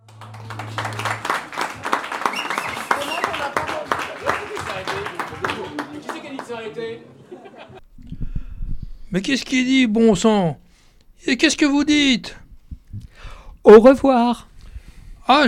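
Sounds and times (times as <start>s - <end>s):
audience applause: 0.0s - 7.0s
people chuckling and laughing: 0.2s - 7.8s
speech: 9.1s - 10.6s, 11.2s - 12.4s, 13.6s - 14.5s, 15.3s - 15.4s.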